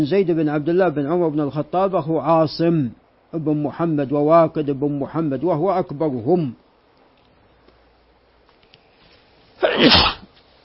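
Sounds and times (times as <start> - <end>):
speech: 0.0 - 6.6, 9.8 - 10.1
single human sneeze: 9.6 - 10.3.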